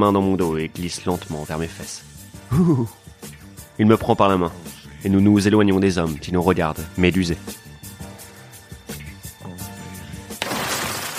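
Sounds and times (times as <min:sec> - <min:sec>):
speech: 0:00.0 - 0:07.6
steady music: 0:00.0 - 0:11.1
car window glass being smashed: 0:10.4 - 0:11.1
hiss of scattering glass shards: 0:10.4 - 0:11.1.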